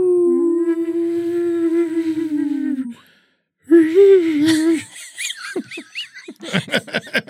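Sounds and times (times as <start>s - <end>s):
person imitating whale calls with vocal moans and whistling: 0.0s - 3.1s, 3.7s - 4.9s
laughter: 4.4s - 7.2s.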